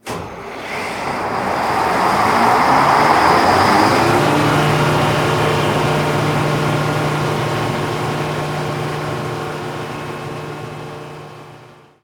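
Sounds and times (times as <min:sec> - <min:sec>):
atmospheric drone from a generator: 0:00.4 - 0:10.0.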